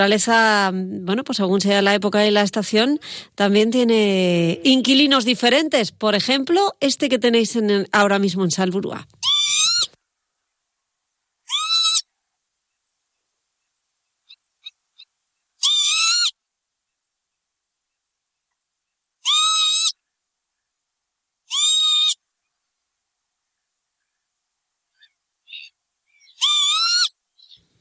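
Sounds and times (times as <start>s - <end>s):
speech: 0.0s - 9.3s
northern lapwing giving a shrill piercing call at Salburua: 11.5s - 12.0s, 14.3s - 16.4s, 19.2s - 20.0s, 21.5s - 22.2s, 25.0s - 27.7s.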